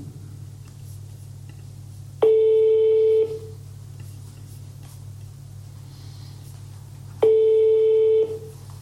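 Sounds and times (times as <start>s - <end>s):
telephone ringback tone on an outgoing call: 2.2s - 3.4s, 7.2s - 8.5s.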